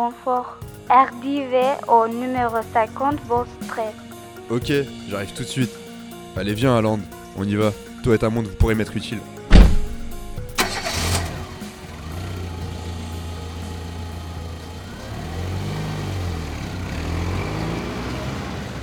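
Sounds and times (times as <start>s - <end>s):
speech: 0.0s - 5.8s, 6.4s - 9.4s
sharp thuds: 9.5s - 10.7s
police car engine turning over, rumbling and revving as the car accelerates away: 10.6s - 18.8s.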